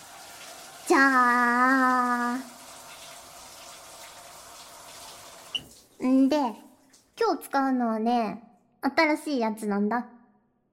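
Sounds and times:
shower spraying water over a seated person: 0:00.0 - 0:07.2
speech: 0:00.9 - 0:02.5, 0:06.0 - 0:06.6, 0:07.2 - 0:10.2.

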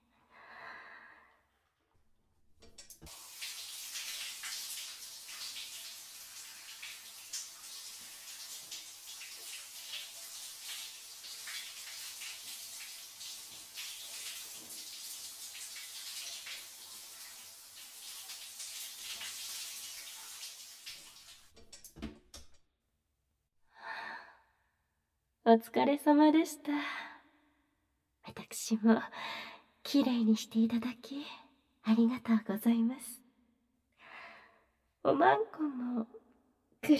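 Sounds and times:
water rinsing after cleaning: 0:02.7 - 0:21.8
speech: 0:25.5 - 0:27.0, 0:28.7 - 0:33.2, 0:35.1 - 0:36.2.

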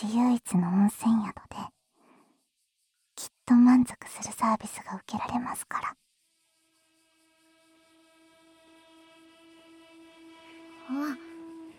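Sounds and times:
speech: 0:00.0 - 0:01.7, 0:03.2 - 0:06.0, 0:10.9 - 0:11.3
train arriving at station: 0:06.7 - 0:11.7.

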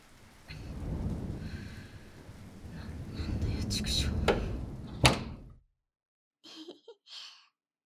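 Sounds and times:
heavy rain roaring: 0:00.0 - 0:05.5
deep rumble of thunder: 0:00.0 - 0:05.6.

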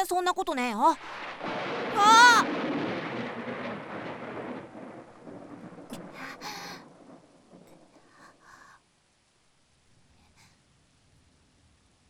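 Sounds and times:
speech: 0:00.0 - 0:02.8
heavy rain: 0:00.9 - 0:11.5
low thunder rumbling with sharp cracks: 0:01.0 - 0:08.8.

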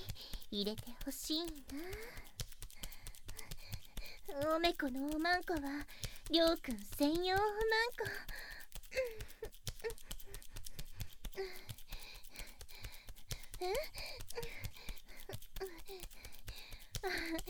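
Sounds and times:
heavy breathing in quick uneven pants: 0:00.0 - 0:01.0, 0:01.6 - 0:04.4, 0:05.8 - 0:06.3, 0:08.0 - 0:17.4
speech: 0:00.5 - 0:02.3, 0:04.3 - 0:09.4, 0:11.4 - 0:11.7, 0:13.6 - 0:14.6, 0:17.0 - 0:17.4.

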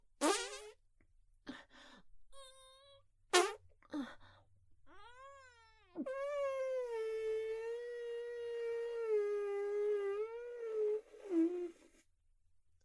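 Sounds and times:
short buzzy fart noises: 0:00.2 - 0:00.7, 0:03.3 - 0:03.6, 0:06.0 - 0:11.9.

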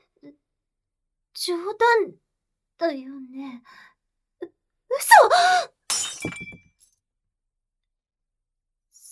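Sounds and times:
speech: 0:01.4 - 0:02.2, 0:02.8 - 0:03.9, 0:04.9 - 0:06.6
glass test tube shattering: 0:05.9 - 0:06.7.

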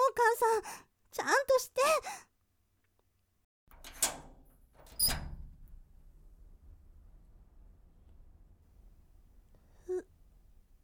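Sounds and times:
speech: 0:00.4 - 0:02.2
metallic clacks of front door lock and latch unlocked with a key: 0:03.7 - 0:05.4
front door creaking or squeaking open: 0:03.7 - 0:05.6.

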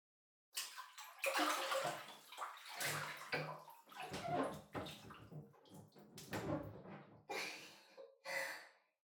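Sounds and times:
bath water sloshing in a wide bathtub as people climb in: 0:00.6 - 0:06.7.

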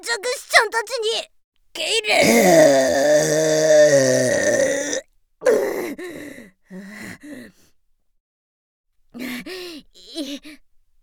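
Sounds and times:
speech: 0:00.0 - 0:04.3
throaty vocal bursts and gasps: 0:02.1 - 0:06.3
very loud burp: 0:02.2 - 0:05.8.

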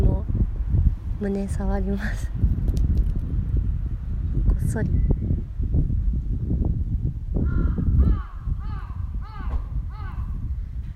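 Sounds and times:
steady low rumble: 0:00.0 - 0:10.9
speech: 0:01.2 - 0:02.5, 0:04.7 - 0:05.1
crow cawing: 0:07.5 - 0:10.4.

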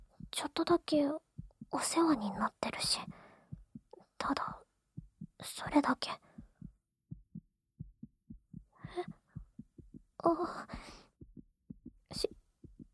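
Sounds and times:
heartbeat thumping: 0:00.0 - 0:12.9
speech: 0:00.5 - 0:03.2, 0:04.2 - 0:04.6, 0:05.4 - 0:06.3, 0:10.2 - 0:11.0, 0:12.1 - 0:12.3
soft breathy rushes and a sharper exhale: 0:03.1 - 0:03.6, 0:06.2 - 0:06.6, 0:10.7 - 0:11.2.

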